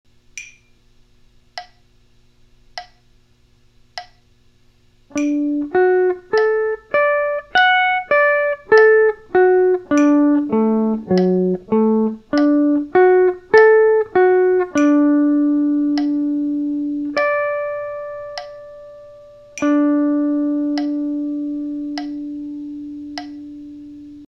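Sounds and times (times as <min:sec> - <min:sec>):
arpeggio in D: 0:05.1 - 0:24.3.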